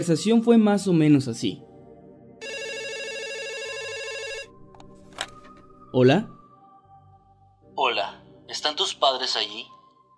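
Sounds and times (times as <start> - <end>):
speech: 0.0 - 1.7, 6.0 - 6.4, 7.8 - 9.7
home telephone ringing with electronic trill: 2.4 - 4.6.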